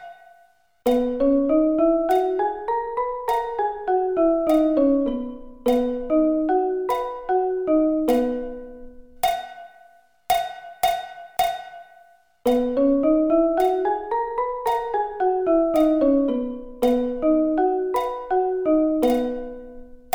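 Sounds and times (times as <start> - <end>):
B scale: 0.9 - 9.0, 12.5 - 20.0.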